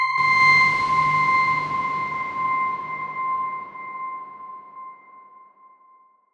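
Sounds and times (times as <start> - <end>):
dark swarm drone: 0.2 - 4.8.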